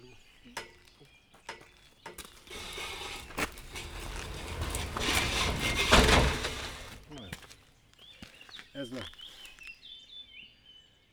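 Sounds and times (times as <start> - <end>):
gate being pulled shut rolling on a rail: 2.2 - 7.3.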